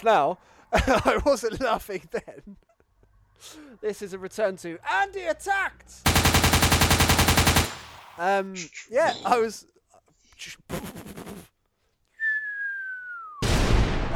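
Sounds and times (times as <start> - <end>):
speech: 0.0 - 2.7, 3.4 - 7.6, 8.2 - 9.8, 10.4 - 10.9
voices imitating gunfire: 6.1 - 8.4
falling whistle: 12.2 - 13.5.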